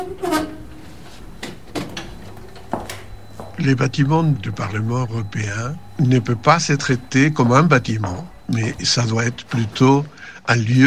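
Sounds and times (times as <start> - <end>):
elevator mechanical clunks and rattles: 0.0 - 3.2
elevator doors sliding open: 0.0 - 10.8
low steady hum: 0.0 - 10.8
speech: 3.6 - 10.8.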